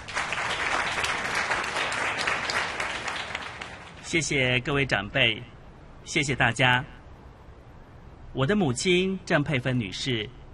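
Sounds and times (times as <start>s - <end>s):
crowd applause at a shopping mall event: 0.0s - 4.0s
speech: 4.1s - 7.0s, 8.4s - 10.4s.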